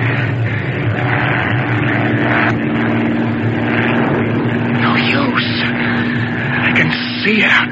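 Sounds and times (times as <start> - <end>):
propeller airplane engine droning during a dive through a storm: 0.0 - 7.7.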